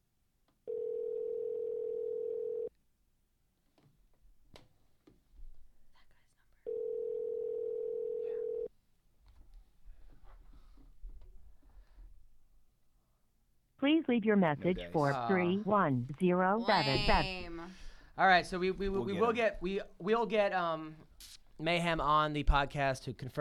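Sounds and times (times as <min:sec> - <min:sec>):
low noise: 0:00.4 - 0:23.3
ringback tone of an outgoing phone call: 0:00.7 - 0:02.7, 0:06.7 - 0:08.7
speech: 0:13.9 - 0:23.3.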